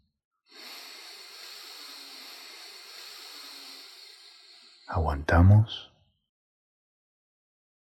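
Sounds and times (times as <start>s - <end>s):
long inhale through the nose during a guided breathing exercise: 0.4s - 4.9s
speech: 4.9s - 5.9s.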